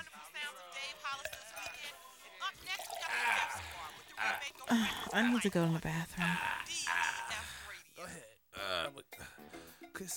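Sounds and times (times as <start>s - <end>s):
drink poured into a glass: 1.0s - 7.4s
faint clink of glass: 1.1s - 3.2s
speech: 4.7s - 6.5s, 10.0s - 10.1s.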